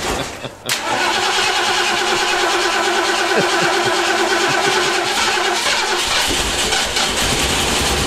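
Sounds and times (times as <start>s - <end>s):
laughter: 0.0s - 5.6s
car engine cranking, struggling to start: 0.7s - 8.0s.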